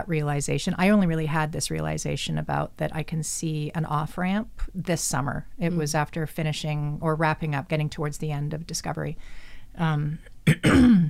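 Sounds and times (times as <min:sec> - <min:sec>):
speech: 0:00.1 - 0:11.0
throat clearing: 0:10.5 - 0:11.0.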